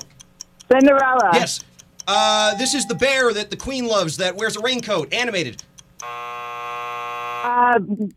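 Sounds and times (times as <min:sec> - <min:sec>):
speech: 0:00.7 - 0:06.2, 0:07.4 - 0:08.1
game timer buzzer: 0:01.2 - 0:07.6.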